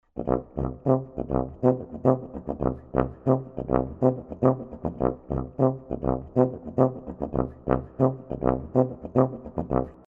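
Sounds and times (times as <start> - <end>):
funk tuba playing root notes, octaves and ghost notes: 0.0 - 10.0.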